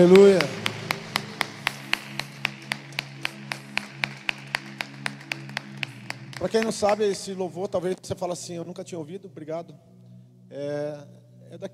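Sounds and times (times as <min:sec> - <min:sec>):
speech: 0:00.0 - 0:00.6, 0:06.4 - 0:11.7
audience clapping in rhythm: 0:00.0 - 0:08.0
sustained low musical tones: 0:00.0 - 0:11.7.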